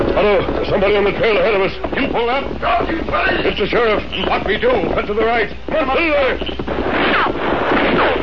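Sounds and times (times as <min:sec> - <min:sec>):
speech: 0:00.2 - 0:06.8
gunshots fired at riders on a trail: 0:06.6 - 0:08.2.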